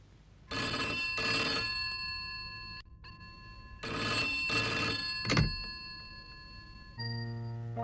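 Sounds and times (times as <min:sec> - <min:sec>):
old-style telephone bell ringing: 0:00.5 - 0:07.8.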